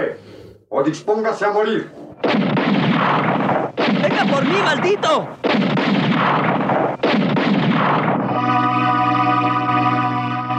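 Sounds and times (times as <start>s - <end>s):
speech: 0.8s - 2.5s, 4.1s - 6.6s
rifle fired blindly: 2.2s - 8.3s
sustained musical tones: 8.2s - 10.5s.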